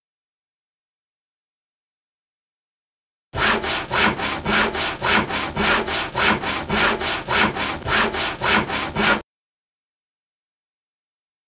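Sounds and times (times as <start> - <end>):
hand saw cutting wood: 3.4 - 9.2.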